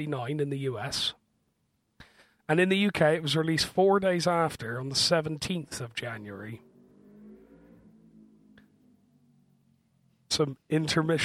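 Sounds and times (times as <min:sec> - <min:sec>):
speech: 0:00.0 - 0:01.2, 0:02.5 - 0:06.7, 0:10.3 - 0:11.2
large motorbike rumbling past outside: 0:06.0 - 0:10.2.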